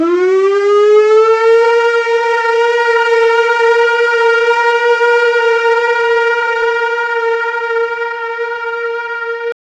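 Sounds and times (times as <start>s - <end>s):
alien siren: 0.0s - 9.6s.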